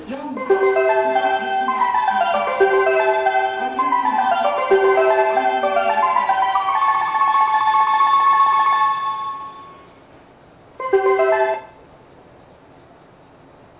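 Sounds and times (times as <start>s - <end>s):
track starting bell at Matsumoto station track 2: 0.4s - 10.1s, 10.8s - 11.8s.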